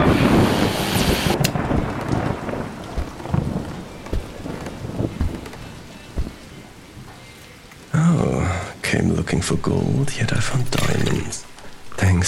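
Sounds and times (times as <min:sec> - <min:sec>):
gusting wind in a storm: 0:00.0 - 0:07.2
heavy rain in a storm: 0:00.0 - 0:09.7
low thuds and rumbles in a storm: 0:01.3 - 0:06.5
speech: 0:09.0 - 0:11.4, 0:12.0 - 0:12.2.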